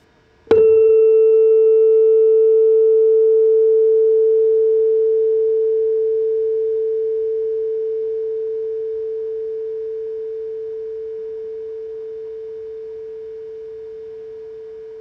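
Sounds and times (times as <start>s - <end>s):
440 tuning fork tone: 0.0s - 14.9s.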